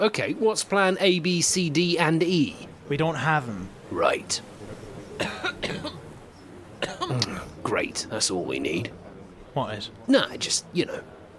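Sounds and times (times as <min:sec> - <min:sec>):
speech: 0:00.0 - 0:04.6, 0:05.2 - 0:06.0, 0:07.1 - 0:09.0, 0:09.6 - 0:11.2
dry coughs: 0:05.2 - 0:06.1, 0:06.8 - 0:07.5.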